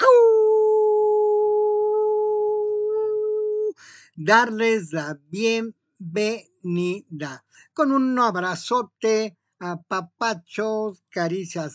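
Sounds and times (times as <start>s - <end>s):
human voice imitating a wolf-like howl: 0.0s - 3.8s
speech: 4.2s - 11.7s.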